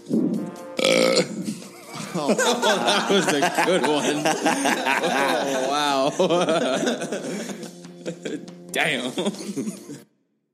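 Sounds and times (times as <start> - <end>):
loud drawn-out croaky burp: 0.8 - 1.5
laughter: 1.4 - 10.0
speech: 2.2 - 9.8.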